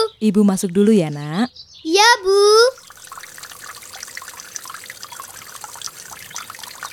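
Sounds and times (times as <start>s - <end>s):
speech: 0.2s - 2.6s
water spraying while watering flowers: 2.7s - 6.9s.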